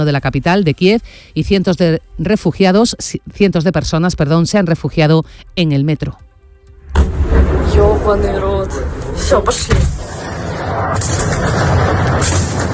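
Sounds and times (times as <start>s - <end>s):
speech: 0.0s - 6.2s, 7.4s - 10.1s, 10.7s - 12.7s
bombs exploding during an overnight missile attack on a city: 6.8s - 8.2s, 9.6s - 12.7s
rumbling noise: 6.8s - 12.7s.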